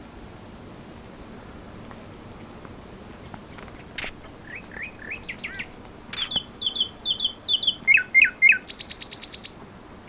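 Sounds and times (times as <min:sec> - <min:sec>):
common nightingale Luscinia megarhynchos song with slurred and whistled notes: 0:03.6 - 0:10.0.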